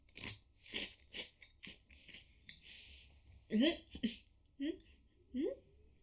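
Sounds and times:
crunchy bites and chewing of avocado soy sauce flavored food: 0.0s - 1.0s
people talking: 3.5s - 4.8s.

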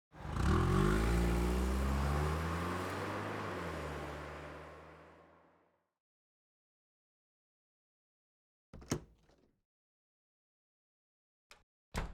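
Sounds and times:
car engine revving as the car pulls away: 0.2s - 5.4s.

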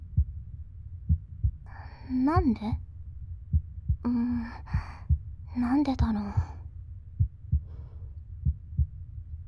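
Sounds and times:
heartbeat thumping: 0.0s - 2.8s, 3.4s - 9.2s
person murmuring and whispering: 1.7s - 2.8s, 5.6s - 6.6s
speech: 2.1s - 2.9s, 4.0s - 4.8s, 5.6s - 6.5s.

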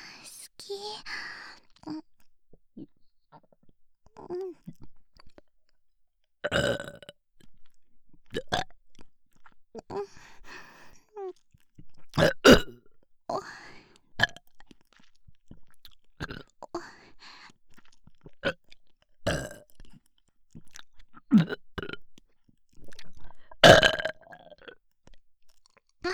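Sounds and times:
speech: 0.7s - 2.1s
burps after fermented food: 6.4s - 7.2s, 8.3s - 8.7s, 12.1s - 12.8s, 14.2s - 14.5s, 16.2s - 16.5s, 18.4s - 19.7s, 21.2s - 22.0s, 23.6s - 24.8s
chewing and crunchy bites: 6.5s - 9.9s, 14.2s - 16.6s, 17.4s - 26.0s.

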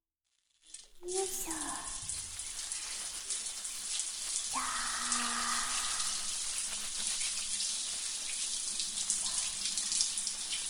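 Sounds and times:
running water rinsing shampoo from hair: 0.7s - 10.6s.

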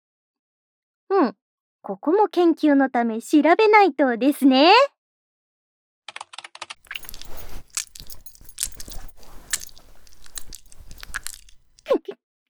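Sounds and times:
speech: 1.1s - 4.9s
fabric rustling: 6.8s - 11.9s
metallic belt buckle being undone: 6.8s - 11.9s
zipper pulled down: 6.8s - 12.0s.

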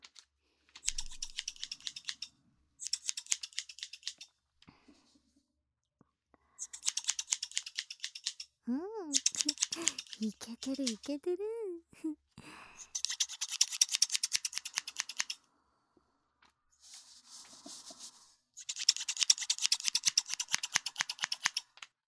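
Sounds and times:
scissors snipping hair during a salon haircut: 0.8s - 4.3s, 6.6s - 8.5s, 9.1s - 11.2s, 12.8s - 15.4s, 18.6s - 21.8s
speech: 10.2s - 12.2s
soft rustling: 16.7s - 18.4s.

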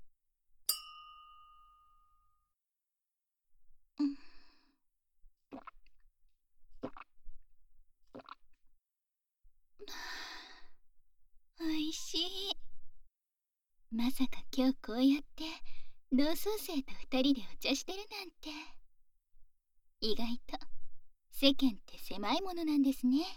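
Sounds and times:
two glasses clinking in a toast: 0.7s - 2.3s
soft breathy sigh: 4.0s - 4.8s, 9.8s - 10.8s
speech: 14.0s - 18.8s, 20.0s - 20.7s, 21.4s - 23.3s.

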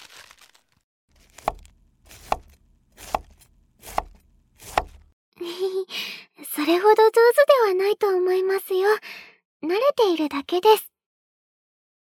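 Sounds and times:
cabbage leaves rustling: 0.0s - 5.0s
knife finely shredding cabbage on a cutting board: 1.2s - 5.1s
speech: 6.7s - 10.9s.

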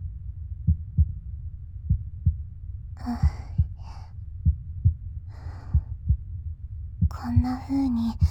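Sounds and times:
heartbeat heard through the chest: 0.6s - 1.2s, 1.8s - 8.2s
speech: 3.0s - 3.4s, 7.2s - 8.2s
soft breaths: 3.0s - 6.3s, 7.0s - 8.2s.

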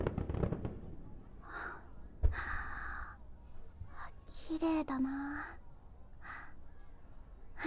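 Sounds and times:
fireworks exploding outside: 0.0s - 2.5s
speech: 4.5s - 5.6s.

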